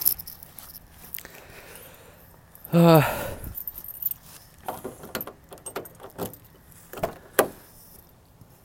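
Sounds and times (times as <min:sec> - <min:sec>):
metallic jangle: 0:00.0 - 0:01.0, 0:03.4 - 0:06.9
speech: 0:02.7 - 0:03.2
truck door opening: 0:04.6 - 0:07.8.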